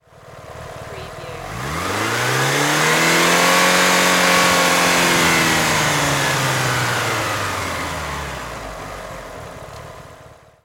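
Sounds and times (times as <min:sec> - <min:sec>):
Mitsubishi Evolution engine long rev: 0:00.1 - 0:10.3.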